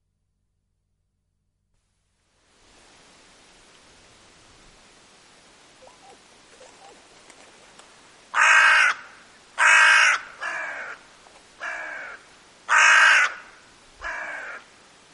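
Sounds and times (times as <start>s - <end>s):
hooded crow cawing: 8.3s - 11.0s, 11.6s - 14.7s.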